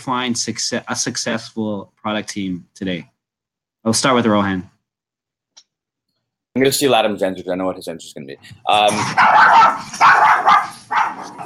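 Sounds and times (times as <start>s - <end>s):
speech: 0.0s - 3.1s, 3.8s - 4.7s, 6.6s - 10.8s
dog barking: 9.0s - 11.4s.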